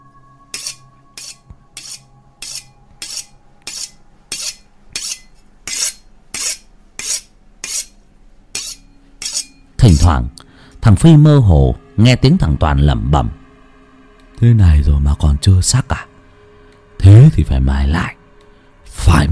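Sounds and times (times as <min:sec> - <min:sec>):
knife being sharpened with steady scraping strokes: 0:00.5 - 0:10.1
speech: 0:09.8 - 0:13.4, 0:14.4 - 0:15.8, 0:17.1 - 0:18.2, 0:19.1 - 0:19.3.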